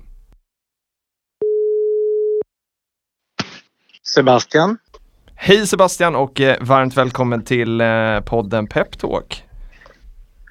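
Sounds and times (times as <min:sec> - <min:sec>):
phone ringback tone beep: 0:01.4 - 0:02.4
speech: 0:04.2 - 0:04.8, 0:05.4 - 0:09.5.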